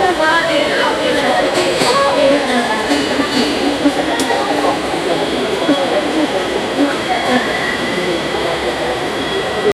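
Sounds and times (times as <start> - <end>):
ambience of a busy Indian railway: 0.0 - 9.7.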